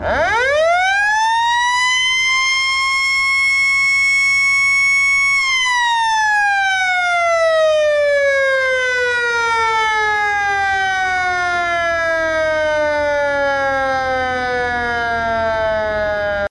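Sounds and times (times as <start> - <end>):
high-power fire siren: 0.0 - 16.4.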